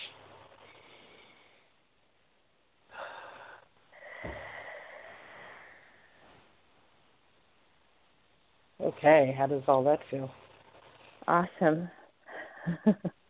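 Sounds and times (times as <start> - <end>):
slow deep breath during a guided relaxation exercise: 0.5 - 1.8, 2.9 - 6.5
speech: 9.0 - 10.4, 11.3 - 12.0, 12.6 - 13.2.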